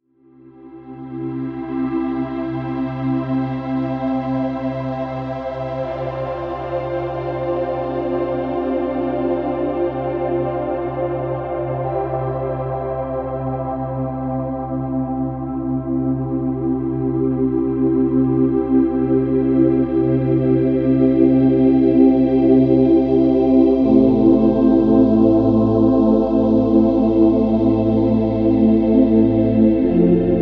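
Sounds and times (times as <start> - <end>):
deep relaxing music: 0.3 - 30.4.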